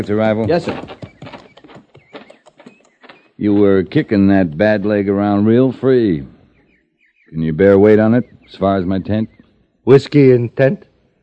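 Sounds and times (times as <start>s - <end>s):
speech: 0.0s - 0.9s, 3.4s - 6.3s, 7.3s - 10.9s
horse hooves clopping: 0.0s - 5.8s.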